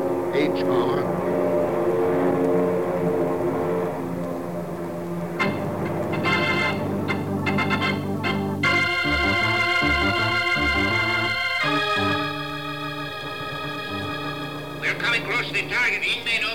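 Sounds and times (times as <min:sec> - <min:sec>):
propeller planes droning overhead during a mock aerial attack exercise: 0:00.0 - 0:16.4
speech: 0:00.4 - 0:01.2.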